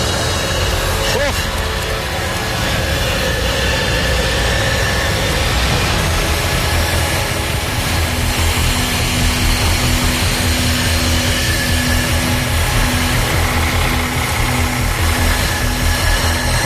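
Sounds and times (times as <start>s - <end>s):
truck engine running: 0.0s - 16.6s.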